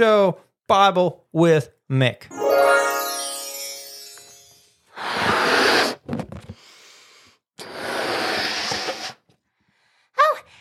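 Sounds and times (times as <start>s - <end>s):
speech: 0.0s - 2.7s
person blowing up a balloon by mouth: 4.9s - 9.3s.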